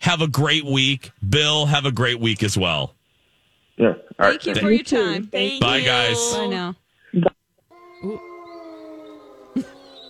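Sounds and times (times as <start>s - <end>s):
speech: 0.1s - 3.0s, 3.8s - 7.3s, 8.0s - 8.3s
wolf howling: 7.7s - 10.0s.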